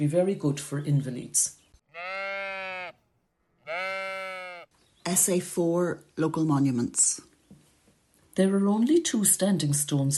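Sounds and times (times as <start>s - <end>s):
speech: 0.0s - 1.6s, 5.0s - 7.3s, 8.4s - 10.1s
goat bleating: 1.9s - 4.7s.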